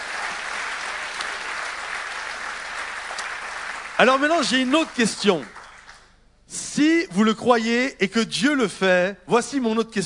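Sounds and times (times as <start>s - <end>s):
audience applauding: 0.0s - 6.1s
speech: 4.0s - 5.6s, 6.5s - 10.0s.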